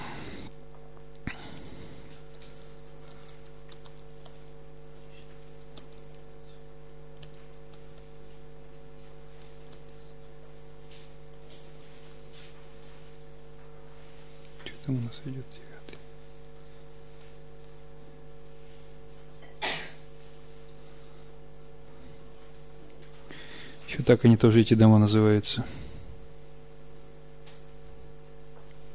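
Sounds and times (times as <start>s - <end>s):
steady electrical hum: 0.0s - 28.9s
keyboard typing clicks: 2.2s - 6.3s, 7.1s - 8.1s, 9.4s - 10.1s, 11.0s - 12.2s
speech: 14.9s - 15.8s, 24.0s - 25.9s.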